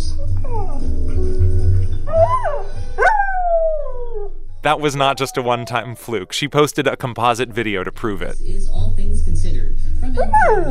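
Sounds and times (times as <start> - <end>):
dog in Washington D.C. howling along to theme music: 0.2 - 0.9, 2.1 - 6.3, 10.1 - 10.6
program theme music: 4.7 - 8.3
speech: 4.7 - 10.6.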